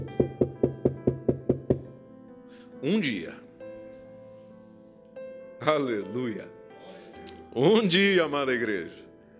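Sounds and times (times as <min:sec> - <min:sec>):
knocking on a wooden door: 0:00.0 - 0:01.9
speech: 0:02.8 - 0:03.4, 0:05.6 - 0:06.6, 0:07.6 - 0:09.0.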